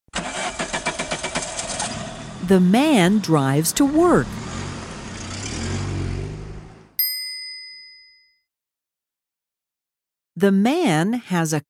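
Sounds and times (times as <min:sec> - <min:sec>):
car engine starting: 0:00.1 - 0:07.0
speech: 0:02.4 - 0:04.4, 0:10.4 - 0:11.6.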